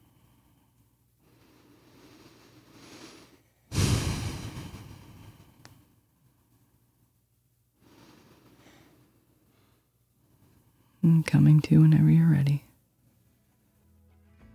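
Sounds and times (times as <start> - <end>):
slow breaths closing a guided practice: 0.0 - 11.0
speech: 11.1 - 12.7.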